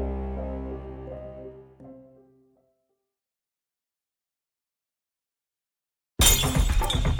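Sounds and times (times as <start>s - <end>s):
glass bottle smashing against hard ground: 6.2s - 7.1s.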